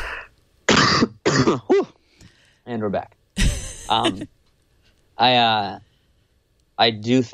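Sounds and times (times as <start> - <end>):
loud harsh coughing fit: 0.7 - 1.9
speech: 1.4 - 1.9, 2.6 - 3.2, 3.9 - 4.4, 5.2 - 5.9, 6.8 - 7.3.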